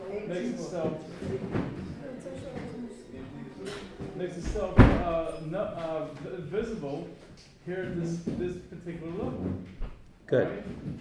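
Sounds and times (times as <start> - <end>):
speech: 0.3 - 2.6, 3.6 - 11.0
door shutting with a thud: 4.4 - 5.2.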